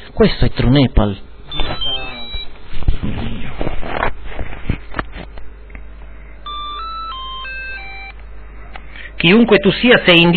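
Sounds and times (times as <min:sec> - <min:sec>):
speech: 0:00.2 - 0:01.3, 0:09.2 - 0:10.3
incoming call phone ringing tone: 0:01.5 - 0:02.4, 0:06.4 - 0:08.2
clattering and rustling noise: 0:02.6 - 0:05.5.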